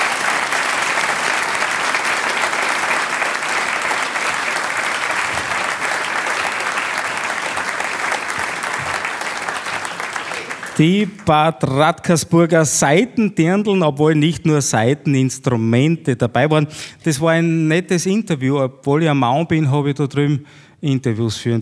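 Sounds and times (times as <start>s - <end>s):
audience applause: 0.0s - 11.5s
speech: 10.8s - 21.6s.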